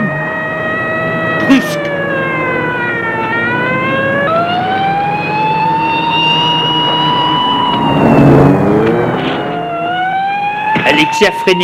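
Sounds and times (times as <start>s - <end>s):
police car siren wailing: 0.0s - 11.6s
vehicle engine rumble: 2.0s - 10.6s
speech: 11.2s - 11.6s.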